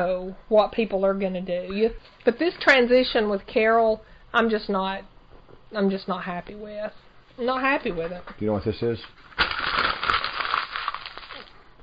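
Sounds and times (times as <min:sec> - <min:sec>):
speech: 0:00.0 - 0:05.1, 0:05.7 - 0:09.4
paper notes being crumpled: 0:09.0 - 0:11.6.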